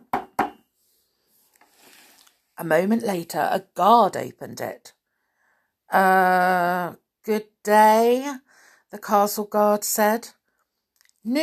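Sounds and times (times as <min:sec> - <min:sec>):
hollow knocks on a tall wooden door: 0:00.0 - 0:00.6
speech: 0:02.6 - 0:05.0, 0:05.9 - 0:10.4, 0:11.2 - 0:11.4.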